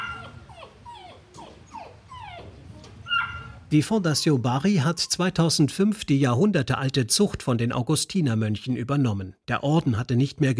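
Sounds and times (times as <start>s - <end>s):
St. Bernard dogs in an enclosure whimpering and yipping: 0.0s - 4.4s
low steady rumble: 0.0s - 6.9s
speech: 3.7s - 10.5s.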